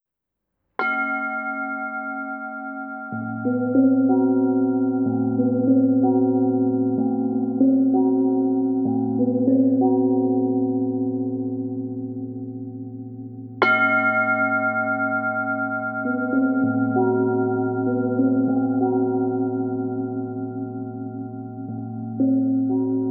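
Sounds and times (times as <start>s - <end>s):
percussion: 0.8s - 23.0s.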